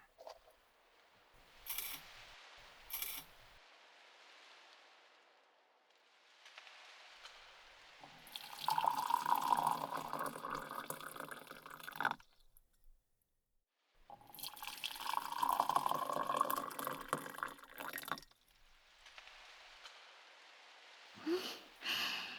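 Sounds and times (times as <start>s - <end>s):
hot water for tea pouring into cups and a small Japanese teapot: 1.4s - 4.9s, 6.3s - 12.4s, 14.1s - 22.3s.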